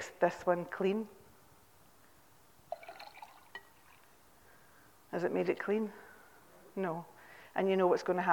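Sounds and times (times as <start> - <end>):
speech: 0.2 - 1.2, 5.1 - 6.0, 6.8 - 8.3
clean water poured into a glass jar of dirty water: 2.7 - 4.2.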